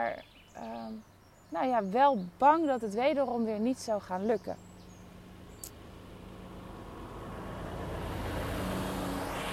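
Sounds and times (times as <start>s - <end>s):
speech: 0.0s - 4.7s
truck passing with engine rumble and tire roar: 4.0s - 9.5s.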